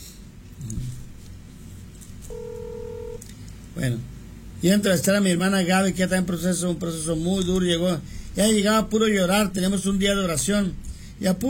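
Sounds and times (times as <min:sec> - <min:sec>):
low hiss: 0:00.0 - 0:11.4
telephone ringing tone of a call being placed: 0:02.3 - 0:03.2
speech: 0:03.8 - 0:11.4.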